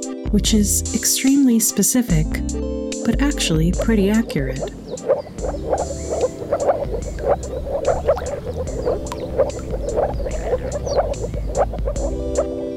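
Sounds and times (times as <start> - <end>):
speech: 0.3 - 5.0
chorus of moor frogs giving their mating call: 3.8 - 12.5.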